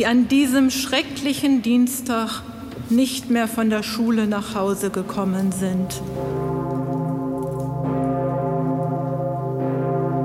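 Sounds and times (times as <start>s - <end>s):
speech: 0.0s - 6.5s
large cathedral bell tolling: 5.8s - 10.2s.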